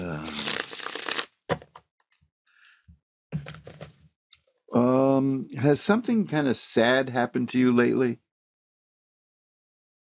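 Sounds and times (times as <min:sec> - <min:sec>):
deck of tarot cards being shuffled: 0:00.0 - 0:01.7
speech: 0:04.7 - 0:08.2.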